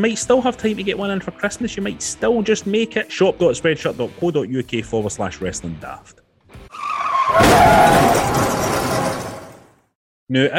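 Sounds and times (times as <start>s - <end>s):
speech: 0.0s - 8.7s, 10.3s - 10.5s
car skidding with tires screeching: 6.6s - 9.4s.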